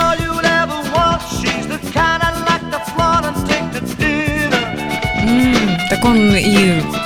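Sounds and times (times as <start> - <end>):
pop song with sung vocal and full band: 0.0 - 7.0
sung vocal melody: 5.2 - 7.0
speech: 6.0 - 7.0.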